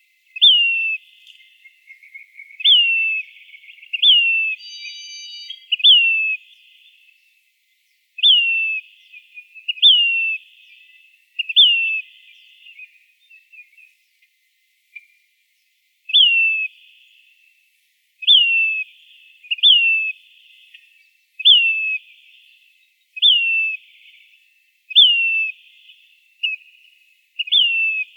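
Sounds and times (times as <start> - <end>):
Say's phoebe high falling whistled call in Arizona: 0.4 - 7.0, 8.2 - 12.1, 16.1 - 16.7, 18.2 - 18.8, 19.5 - 20.2, 21.4 - 22.0, 23.2 - 23.8, 24.9 - 25.6, 27.4 - 28.1.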